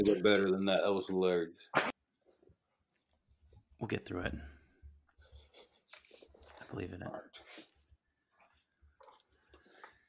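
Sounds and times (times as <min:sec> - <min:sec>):
speech: 0:00.0 - 0:01.9, 0:03.8 - 0:04.6, 0:06.7 - 0:07.7
chewing melty food with wet squishy bites: 0:05.7 - 0:10.0.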